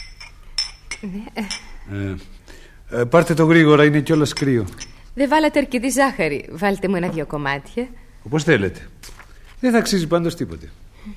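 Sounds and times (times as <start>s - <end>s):
tea cups and spoons clinking as tea is served: 0.0s - 1.9s, 3.9s - 5.1s
speech: 1.0s - 9.0s, 9.6s - 11.1s.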